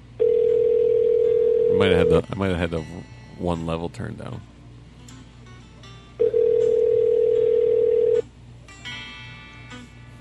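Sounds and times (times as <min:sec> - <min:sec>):
telephone ringing tone: 0:00.2 - 0:02.1, 0:06.2 - 0:08.2
speech: 0:01.8 - 0:04.5.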